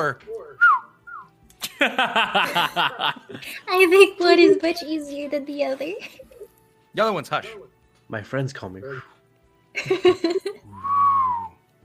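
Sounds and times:
speech: 0:00.0 - 0:00.7, 0:01.8 - 0:06.2, 0:06.9 - 0:09.1, 0:09.8 - 0:11.0
person whistling two short notes sliding down in pitch: 0:00.6 - 0:01.3, 0:10.7 - 0:11.6
person laughing in rhythmic pulses: 0:01.6 - 0:03.5, 0:09.8 - 0:11.0.

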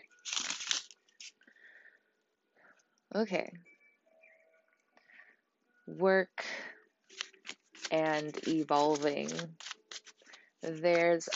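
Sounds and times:
deck of tarot cards being shuffled: 0:00.0 - 0:01.4, 0:07.1 - 0:11.3
speech: 0:03.1 - 0:03.7, 0:05.9 - 0:06.5, 0:07.9 - 0:09.6, 0:10.6 - 0:11.3.

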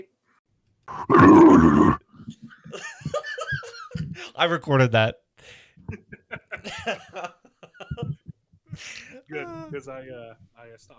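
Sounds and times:
speech: 0:00.9 - 0:02.0, 0:04.4 - 0:07.4, 0:08.8 - 0:10.9
person growling loudly and roughly: 0:00.9 - 0:02.1
laughter: 0:02.2 - 0:04.4, 0:05.9 - 0:08.3.

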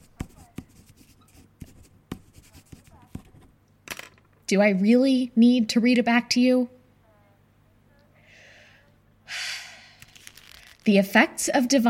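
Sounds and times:
pen writing on paper: 0:00.0 - 0:03.4
speech: 0:04.5 - 0:06.8, 0:10.9 - 0:11.8
paper rustle: 0:10.0 - 0:11.0.

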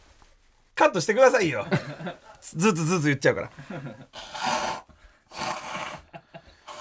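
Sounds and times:
speech: 0:00.8 - 0:04.4
forceful breathy nose blowing: 0:04.1 - 0:06.7.

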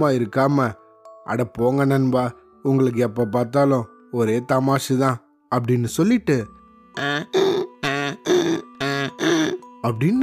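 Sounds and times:
speech: 0:00.0 - 0:07.4, 0:09.9 - 0:10.2
person mimicking a donkey's hee-haw bray: 0:07.0 - 0:09.7.

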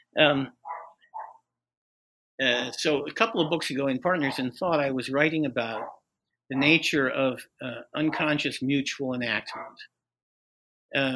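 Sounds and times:
speech: 0:00.2 - 0:00.6, 0:02.4 - 0:10.0, 0:10.9 - 0:11.1
dog barking indoors: 0:00.6 - 0:01.4, 0:03.3 - 0:04.5, 0:05.7 - 0:06.0, 0:06.6 - 0:06.8, 0:08.1 - 0:08.4, 0:09.5 - 0:09.9.

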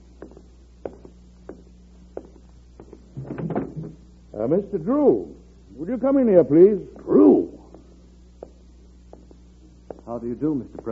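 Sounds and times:
footsteps tapping across a room: 0:00.0 - 0:04.0, 0:06.9 - 0:10.8
rattle and scrape of a door being opened: 0:03.2 - 0:04.0
speech: 0:04.4 - 0:07.0, 0:10.2 - 0:10.8.

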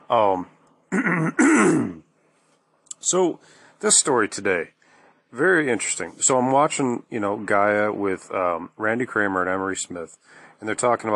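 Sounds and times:
speech: 0:00.1 - 0:02.0, 0:03.0 - 0:11.1
adult man coughing: 0:00.9 - 0:02.0
adult man clearing his throat: 0:00.9 - 0:02.1.

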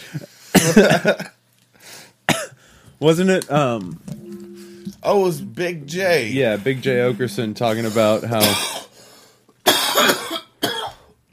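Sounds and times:
speech: 0:00.1 - 0:01.4, 0:03.0 - 0:04.1, 0:05.0 - 0:08.7
coughing into a microphone: 0:02.3 - 0:02.6, 0:08.4 - 0:08.9, 0:09.6 - 0:11.1.

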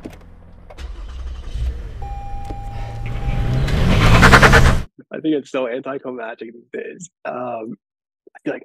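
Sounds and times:
car engine starting and revving: 0:00.0 - 0:04.9
push-button ignition electronic chime tone: 0:02.0 - 0:03.7
speech: 0:05.3 - 0:08.6.

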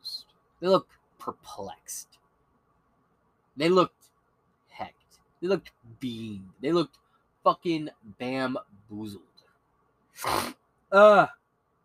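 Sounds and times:
speech: 0:00.6 - 0:02.2, 0:03.6 - 0:04.0, 0:04.8 - 0:09.3, 0:10.2 - 0:11.4
sneeze: 0:10.2 - 0:10.6.

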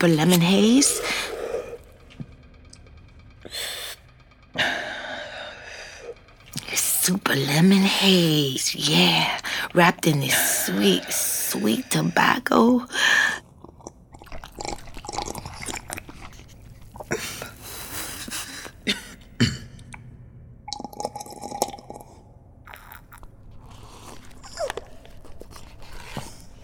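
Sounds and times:
speech: 0:00.0 - 0:01.3, 0:07.1 - 0:13.2
person chewing shrimp-flavoured ramen noodles: 0:13.4 - 0:18.8, 0:20.7 - 0:26.6.

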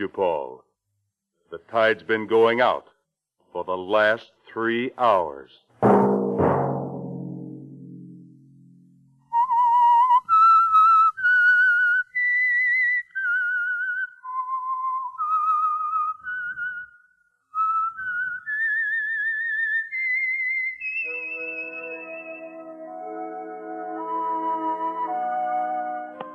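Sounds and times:
speech: 0:00.0 - 0:00.7, 0:01.5 - 0:02.9, 0:03.5 - 0:06.1
whistled theme melody: 0:09.2 - 0:26.3
soft orchestral accompaniment: 0:21.0 - 0:26.3.

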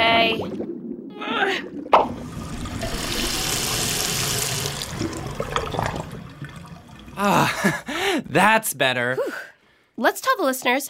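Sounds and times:
water draining and gurgling: 0:00.0 - 0:08.2
speech: 0:07.2 - 0:10.8.

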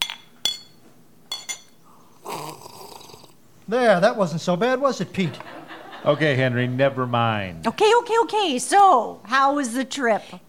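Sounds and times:
glasses clinking in a toast: 0:00.0 - 0:01.8
speech: 0:03.7 - 0:10.4
laughter: 0:05.1 - 0:06.8.

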